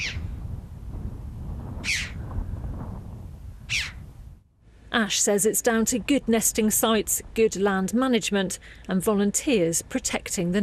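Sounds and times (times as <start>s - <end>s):
red-billed chough calling in Cornwall: 0.0s - 0.2s, 1.8s - 2.2s, 3.7s - 4.0s
speech: 5.0s - 10.6s.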